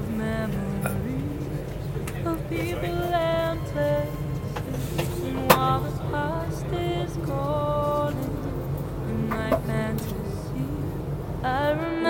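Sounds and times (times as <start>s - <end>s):
indistinct voices: 0.0s - 11.9s
deep rumble in a moving train carriage: 0.0s - 12.0s.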